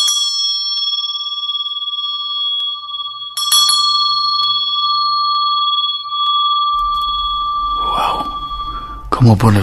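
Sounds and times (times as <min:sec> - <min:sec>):
bell ringing: 0:00.0 - 0:09.6
low rumble: 0:06.6 - 0:09.6
speech: 0:09.2 - 0:09.6.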